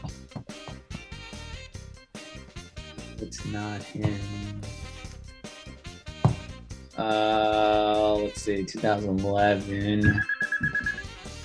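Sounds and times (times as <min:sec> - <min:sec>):
speech: 0:03.2 - 0:04.7, 0:07.0 - 0:10.3
mobile phone ringtone with high electronic tone: 0:10.0 - 0:11.4.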